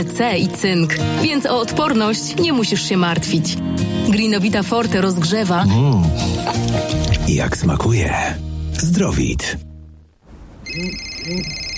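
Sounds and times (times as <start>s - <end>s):
speech: 0.0s - 9.7s, 10.7s - 11.6s
telephone ringing with electronic tone: 10.6s - 11.7s.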